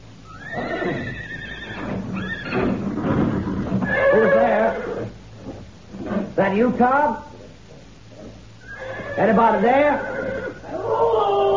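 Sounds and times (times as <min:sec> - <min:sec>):
restless horses neighing and whinnying at a ranch at night: 0:00.3 - 0:06.4, 0:07.3 - 0:11.5
horse hooves clopping and shuffling: 0:01.3 - 0:06.4, 0:07.3 - 0:10.7
speech: 0:06.4 - 0:07.3, 0:09.2 - 0:10.1.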